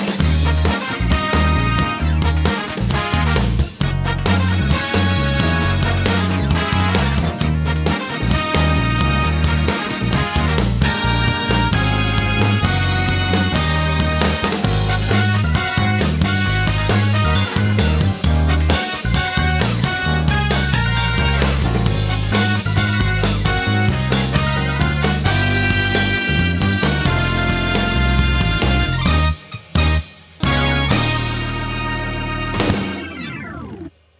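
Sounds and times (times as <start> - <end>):
big win jingle loop: 0.2 - 33.9.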